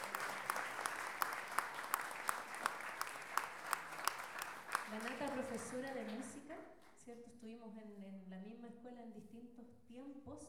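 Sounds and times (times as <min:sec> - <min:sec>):
audience applauding a singer at a décima song gathering: 0:00.0 - 0:06.4
speech: 0:05.0 - 0:10.4.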